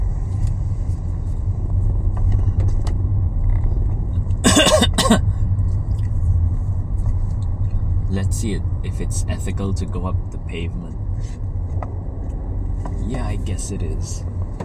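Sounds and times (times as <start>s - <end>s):
cars on a road: 0.0s - 14.6s
sharp cough-like bursts: 4.4s - 5.3s
speech: 8.3s - 11.9s, 13.1s - 14.4s.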